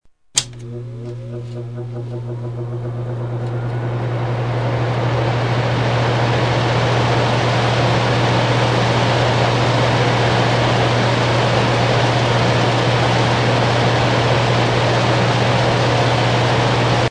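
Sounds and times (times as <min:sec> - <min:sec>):
air conditioner: 0:00.4 - 0:17.0.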